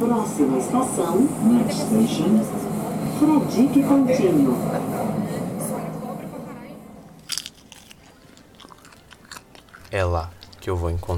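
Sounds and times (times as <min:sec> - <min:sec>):
speech: 0:00.0 - 0:05.0, 0:09.9 - 0:11.1
popcorn being eaten one piece at a time: 0:07.2 - 0:10.9.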